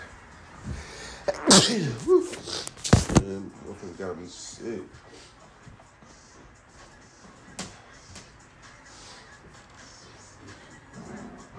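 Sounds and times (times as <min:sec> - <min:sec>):
breathing: 0:00.6 - 0:01.3, 0:05.0 - 0:05.5, 0:08.8 - 0:09.4
person sneezing: 0:01.3 - 0:03.0.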